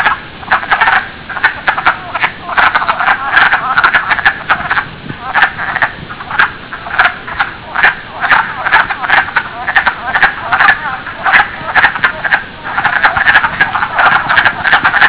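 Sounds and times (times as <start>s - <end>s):
wood frog calling: 0.0s - 15.0s.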